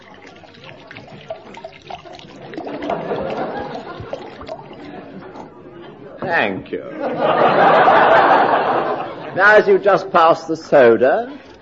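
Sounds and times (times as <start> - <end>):
brandy poured from a bottle into a glass: 0.0 - 6.2
laughter: 2.6 - 6.2, 6.8 - 9.4
speech: 6.3 - 8.6, 9.4 - 11.5.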